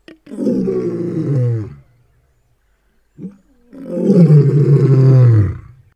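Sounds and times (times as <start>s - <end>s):
lion roaring: 0.2s - 1.9s, 3.2s - 5.8s.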